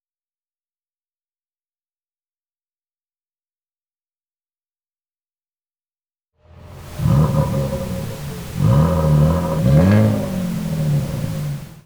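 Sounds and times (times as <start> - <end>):
pink noise: 6.7 - 11.8.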